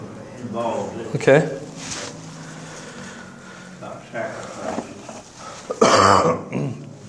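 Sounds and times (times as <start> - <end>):
speech: 0.5 - 1.5
person clearing throat: 5.7 - 6.8
person coughing: 5.7 - 6.8.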